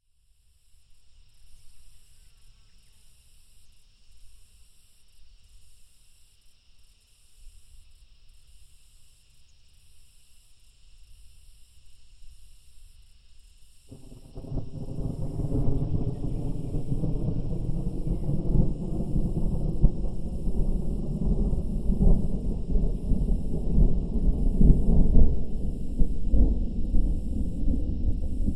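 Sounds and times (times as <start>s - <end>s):
thunder: 13.9s - 28.5s.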